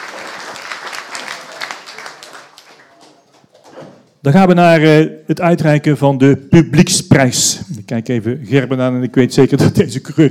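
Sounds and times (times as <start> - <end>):
crowd applause for the junior of the year: 0.0 - 3.7
speech: 4.2 - 10.2.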